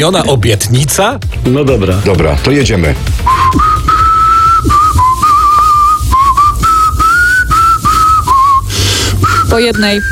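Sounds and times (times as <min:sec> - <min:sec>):
speech: 0:00.0 - 0:03.7, 0:09.5 - 0:10.1
man whistling a rock song melody: 0:03.2 - 0:10.1.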